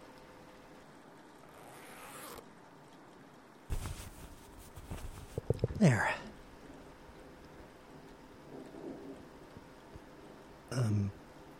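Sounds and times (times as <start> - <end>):
clothing zipper being pulled: 1.5 - 2.4
fabric rustling and handling: 3.7 - 5.8
speech: 5.8 - 6.2.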